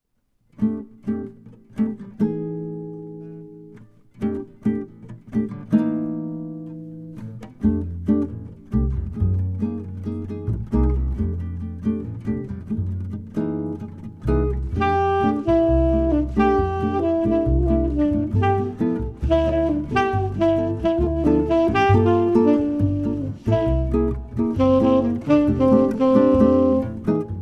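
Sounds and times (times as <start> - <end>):
jazz trio guitar: 0.2 - 27.3
jazz trio bass: 4.2 - 27.3
jazz trio saxophone: 14.4 - 27.3.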